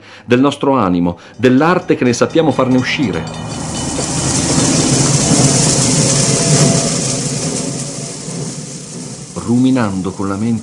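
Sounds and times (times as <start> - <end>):
speech: 0.2 - 3.6, 9.5 - 10.6
train rumbling at a railway station: 1.2 - 10.6.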